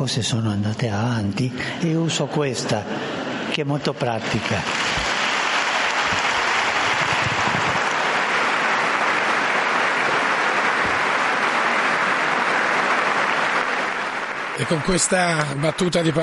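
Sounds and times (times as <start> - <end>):
speech: 0.0 - 4.9, 14.6 - 16.2
large crowd applauding in a large hall: 4.1 - 16.2.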